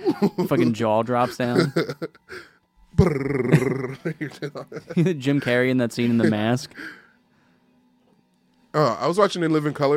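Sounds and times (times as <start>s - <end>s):
laughter: 0.0s - 6.4s
speech: 0.1s - 7.0s, 8.7s - 9.9s
short breathy intake: 2.3s - 2.6s, 6.7s - 7.7s.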